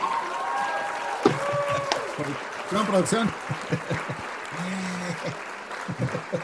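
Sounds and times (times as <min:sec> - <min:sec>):
applause: 0:00.0 - 0:06.4
people laughing: 0:01.3 - 0:02.0, 0:03.2 - 0:06.4
speech: 0:02.2 - 0:04.1.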